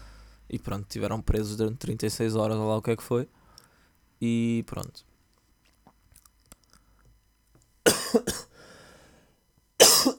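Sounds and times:
speech: 0:00.5 - 0:03.4, 0:04.2 - 0:05.1, 0:08.1 - 0:08.4
person coughing harshly: 0:07.8 - 0:08.6, 0:09.8 - 0:10.1
faint raspy breath: 0:08.5 - 0:09.4.

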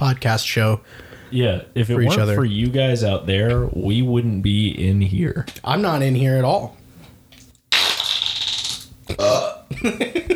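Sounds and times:
speech: 0:00.0 - 0:06.8, 0:09.1 - 0:10.3
loud drawn-out rasping burp with gurgling belches: 0:09.1 - 0:09.7.

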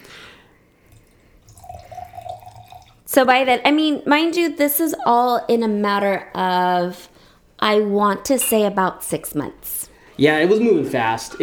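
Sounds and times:
drink refill pouring into a glass: 0:00.9 - 0:03.1
speech: 0:03.1 - 0:11.4.

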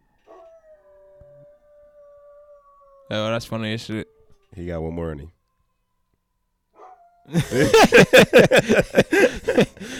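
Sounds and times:
dog howling: 0:00.1 - 0:04.7, 0:06.8 - 0:07.4
speech: 0:03.1 - 0:05.4, 0:07.3 - 0:09.9
laughter: 0:07.3 - 0:09.9.

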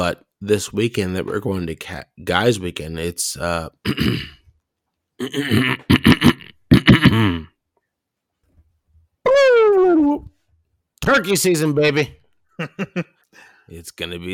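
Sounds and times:
speech: 0:00.0 - 0:04.4, 0:05.2 - 0:06.3, 0:07.0 - 0:07.5, 0:09.2 - 0:10.3, 0:11.0 - 0:14.3
woman coughing and clearing her throat: 0:03.9 - 0:04.4, 0:05.2 - 0:07.5.

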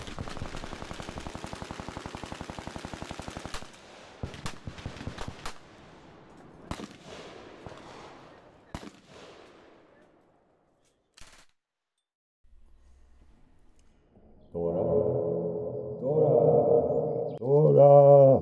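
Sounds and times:
machine gun firing rapid dense bursts: 0:00.0 - 0:03.2
low rumbling background: 0:12.5 - 0:17.5.

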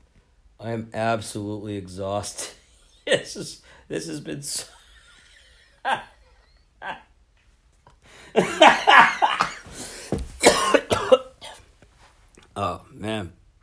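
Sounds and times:
speech: 0:00.6 - 0:04.8, 0:05.8 - 0:06.1, 0:06.8 - 0:07.1, 0:08.3 - 0:09.2, 0:12.6 - 0:13.4
person coughing: 0:09.0 - 0:11.7.

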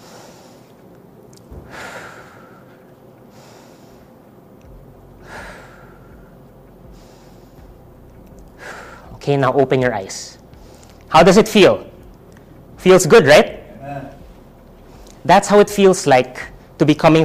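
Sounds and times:
slow deep breaths during a guided breathing exercise: 0:00.0 - 0:00.9, 0:01.5 - 0:04.2, 0:05.2 - 0:09.2, 0:10.4 - 0:11.1, 0:14.6 - 0:15.2
speech: 0:09.2 - 0:10.4, 0:11.1 - 0:11.9, 0:12.8 - 0:13.5, 0:15.3 - 0:17.2.

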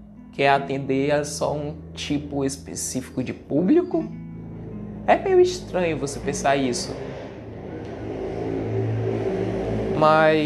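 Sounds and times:
speech: 0:00.4 - 0:04.2, 0:05.1 - 0:07.2, 0:10.0 - 0:10.4
motorcycle engine revving past: 0:04.4 - 0:10.4.

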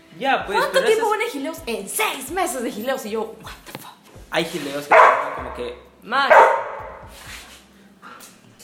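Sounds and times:
speech: 0:00.2 - 0:03.6, 0:04.3 - 0:06.6
dog barking: 0:04.9 - 0:07.1.

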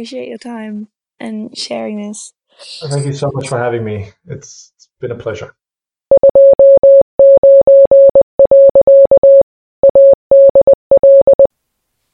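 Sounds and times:
speech: 0:00.0 - 0:05.6
Morse code beeping tone: 0:06.1 - 0:11.5.

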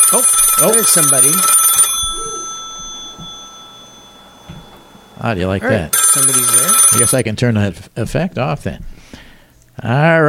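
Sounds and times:
telephone bell ringing: 0:00.0 - 0:07.2
speech: 0:00.1 - 0:01.6, 0:05.2 - 0:08.9, 0:09.8 - 0:10.2.

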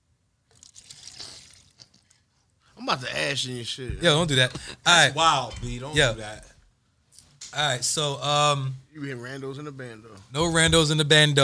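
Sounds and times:
liquid pouring: 0:00.5 - 0:02.2
speech: 0:02.9 - 0:06.5, 0:07.6 - 0:11.4.

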